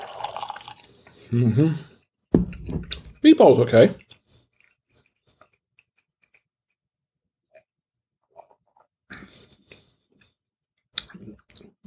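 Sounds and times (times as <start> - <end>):
wine glugging and splashing into a glass: 0.0 - 0.9
speech: 1.3 - 1.9, 2.7 - 4.0.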